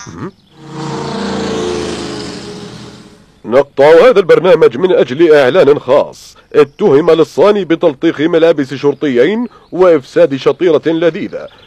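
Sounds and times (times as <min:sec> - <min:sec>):
speech: 0:00.0 - 0:00.7, 0:03.5 - 0:11.6
race car engines roaring on a TV broadcast: 0:00.6 - 0:03.4.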